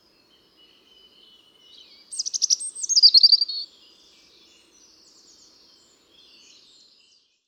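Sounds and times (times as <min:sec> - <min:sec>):
European robin singing: 0:00.0 - 0:06.7.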